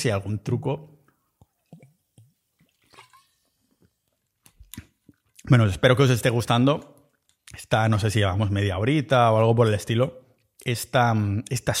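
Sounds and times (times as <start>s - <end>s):
speech: 0.0s - 0.9s, 5.5s - 11.7s
person sipping water: 1.4s - 5.4s.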